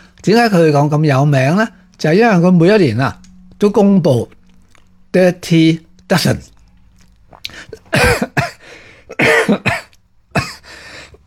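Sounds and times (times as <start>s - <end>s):
speech: 0.2s - 4.4s, 5.1s - 6.5s, 7.5s - 8.4s
person coughing: 7.5s - 10.7s
throat clearing: 7.7s - 10.6s.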